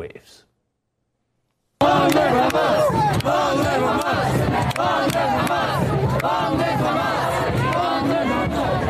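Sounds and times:
speech: 0.0s - 0.5s
large protest crowd in New York chanting in unison: 1.8s - 8.8s.

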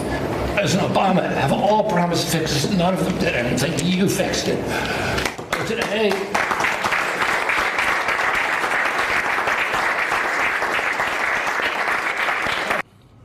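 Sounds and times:
speech: 0.6s - 6.4s
audience at a political address applauding: 5.2s - 12.8s
person clapping alone: 5.2s - 12.8s.

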